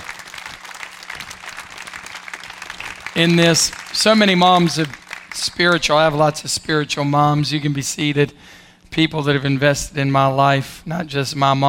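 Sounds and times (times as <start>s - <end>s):
audience clapping at a gathering honouring mothers: 0.0s - 6.3s
speech: 3.2s - 11.6s.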